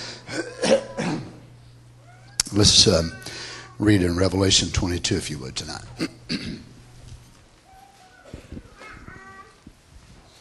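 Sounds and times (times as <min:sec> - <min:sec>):
coughing: 0:00.3 - 0:01.4, 0:05.9 - 0:06.8
rough throat clearing: 0:00.3 - 0:01.4, 0:06.0 - 0:06.7
speech: 0:02.5 - 0:06.5.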